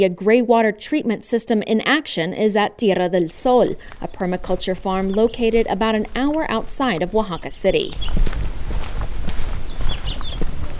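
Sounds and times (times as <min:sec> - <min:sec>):
speech: 0:00.0 - 0:08.4
noisy outdoor background: 0:00.0 - 0:10.7
footsteps on a path on a permaculture farm outside Oaxaca City, Mexico: 0:03.2 - 0:10.7
bird chirps: 0:07.3 - 0:08.2, 0:09.6 - 0:10.7.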